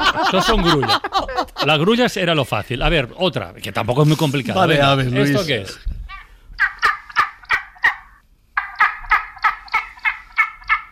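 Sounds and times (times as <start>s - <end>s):
laughter: 0.0s - 1.9s
speech: 0.2s - 6.0s
Spanish imperial eagle hoarse barking calls: 6.1s - 10.9s.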